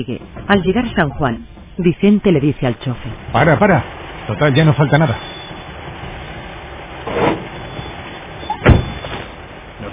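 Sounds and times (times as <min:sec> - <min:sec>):
speech: 0:00.0 - 0:05.3
truck engine rumbling on road: 0:00.0 - 0:09.9
door closing thump: 0:08.5 - 0:09.3.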